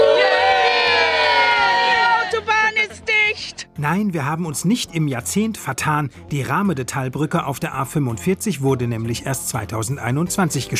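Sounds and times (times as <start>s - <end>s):
large crowd cheering on a closed autobahn in the Ruhr area: 0.0s - 3.0s
speech: 3.9s - 10.7s.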